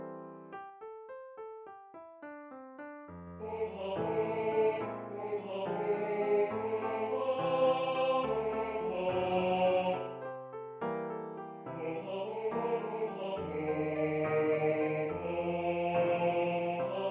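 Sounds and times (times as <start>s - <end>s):
gospel choir singing with tenor: 3.4s - 10.2s, 11.7s - 17.0s.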